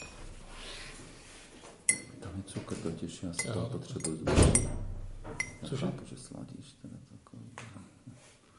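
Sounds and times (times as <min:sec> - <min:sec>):
metal teaspoon clinking against dishes: 0:01.9 - 0:02.2, 0:03.3 - 0:04.7, 0:05.4 - 0:05.7
speech: 0:02.5 - 0:04.9, 0:05.6 - 0:07.5.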